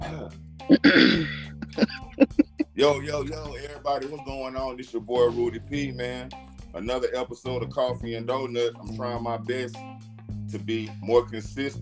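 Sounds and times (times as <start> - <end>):
speech: 0.7 - 1.9, 2.8 - 11.8
throat clearing: 0.7 - 2.1.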